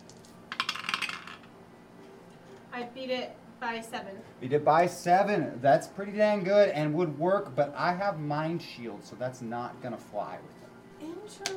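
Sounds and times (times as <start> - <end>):
dice clattering across a hard surface: 0.0 - 1.5
speech: 2.8 - 11.5.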